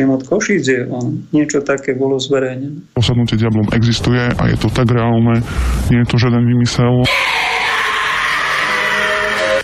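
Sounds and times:
speech: 0:00.0 - 0:07.4
woman screaming during an exorcism in the Czech Republic: 0:07.1 - 0:09.6.

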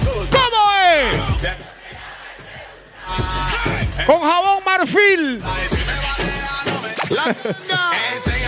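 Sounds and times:
audience shouting along: 0:00.2 - 0:04.5
speech: 0:04.1 - 0:05.7, 0:07.2 - 0:08.3
laughter: 0:06.8 - 0:08.3.

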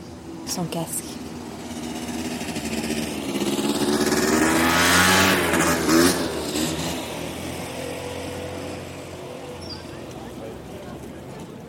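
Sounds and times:
speech: 0:00.5 - 0:01.1
scooter engine revving on a very small island: 0:01.2 - 0:10.3.

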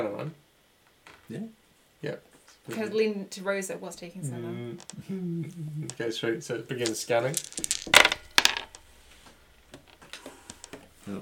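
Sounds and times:
speech: 0:01.3 - 0:08.2
dice clattering onto a surface: 0:06.8 - 0:08.9, 0:09.7 - 0:10.8.

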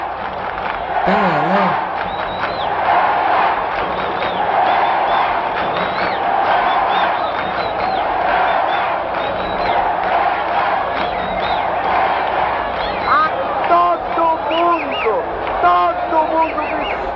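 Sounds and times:
packed football stadium crowd chanting: 0:00.8 - 0:17.1
speech: 0:01.0 - 0:01.8
laughter: 0:01.1 - 0:02.0.

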